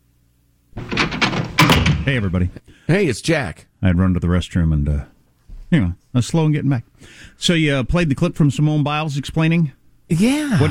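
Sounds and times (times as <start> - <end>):
door being knocked into: 0.8 - 2.3
speech: 2.1 - 5.1, 5.7 - 10.7.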